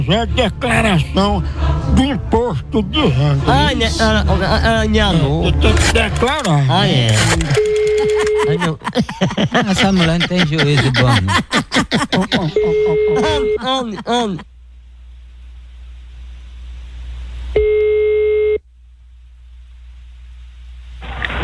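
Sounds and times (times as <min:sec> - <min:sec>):
speech: 0:00.0 - 0:07.6, 0:08.5 - 0:14.5
laughter: 0:02.9 - 0:06.5, 0:07.2 - 0:14.4
telephone ringback tone before a call is answered: 0:12.6 - 0:13.6, 0:17.6 - 0:18.6.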